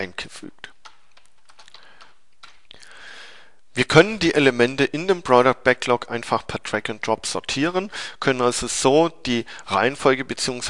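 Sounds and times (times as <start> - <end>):
speech: 0.0 - 0.7, 3.8 - 10.6
fingers typing on a computer keyboard: 0.7 - 2.8.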